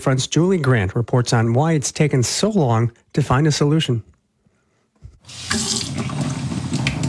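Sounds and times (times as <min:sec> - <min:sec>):
speech: 0:00.0 - 0:04.1, 0:05.2 - 0:06.1
tap water running from a faucet in a town in southeastern Ohio: 0:05.2 - 0:07.0.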